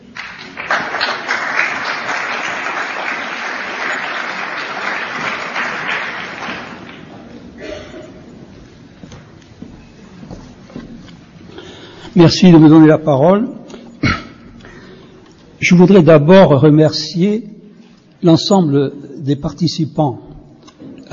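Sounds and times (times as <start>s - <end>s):
crowd applauding at a work day: 0.0s - 7.4s
speech: 12.2s - 13.6s, 15.7s - 17.5s, 18.2s - 20.2s.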